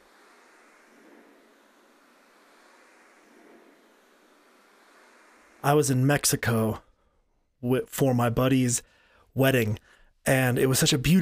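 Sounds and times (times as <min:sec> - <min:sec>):
light ocean waves: 0:00.0 - 0:07.6
speech: 0:05.6 - 0:06.9, 0:07.6 - 0:11.2.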